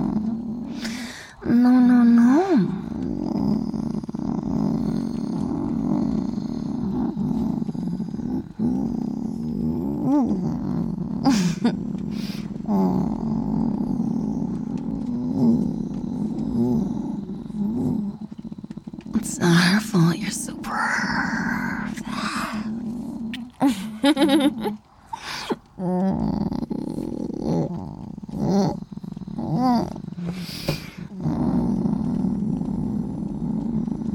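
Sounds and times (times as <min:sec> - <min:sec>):
cat purring: 0:00.0 - 0:34.1
speech: 0:01.4 - 0:01.8.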